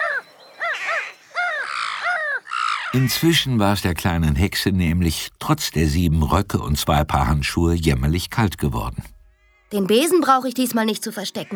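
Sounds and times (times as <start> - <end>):
flock of crows cawing in flight: 0.0 - 3.0
speech: 2.9 - 11.5.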